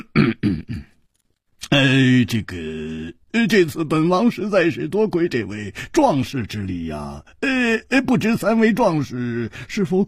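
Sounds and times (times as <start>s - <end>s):
storyteller voicing a heavy cough: 0.0s - 1.0s
speech: 1.8s - 10.0s.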